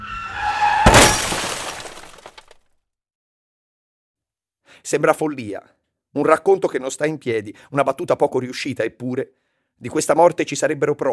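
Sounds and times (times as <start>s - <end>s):
car tires screeching: 0.0s - 1.3s
loud car crash: 0.0s - 2.5s
glass shattering: 0.8s - 2.5s
scattered tinkling debris: 0.9s - 2.4s
speech: 4.8s - 11.1s.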